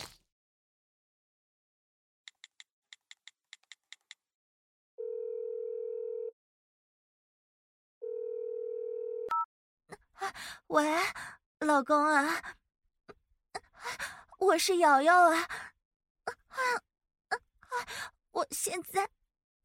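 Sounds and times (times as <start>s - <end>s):
telephone ringback tones: 5.0s - 6.3s, 8.0s - 9.5s
telephone keypad beeps: 9.2s - 9.5s
speech: 10.2s - 12.6s, 13.8s - 15.7s, 16.6s - 19.6s.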